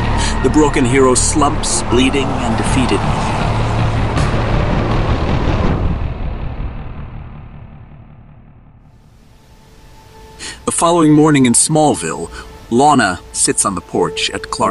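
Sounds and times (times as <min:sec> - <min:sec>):
heavy armored car engine roaring and driving away: 0:00.0 - 0:09.2
speech: 0:00.4 - 0:03.7, 0:10.8 - 0:14.6.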